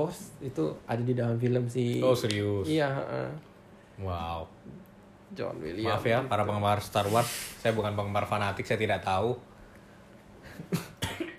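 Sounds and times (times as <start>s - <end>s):
speech: 0.0s - 9.5s
person coughing: 10.7s - 11.3s.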